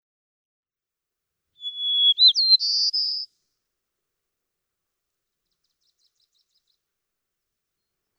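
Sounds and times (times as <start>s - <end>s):
white-crowned sparrow song with clear whistle and buzzy trills: 1.6s - 3.3s, 5.5s - 6.8s.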